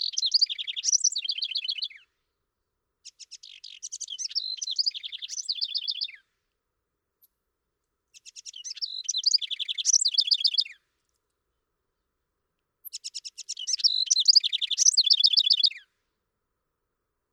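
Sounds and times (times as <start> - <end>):
House wren singing gurgling phrases: 0.0 - 2.0, 3.0 - 6.2, 8.2 - 10.8, 12.8 - 15.8.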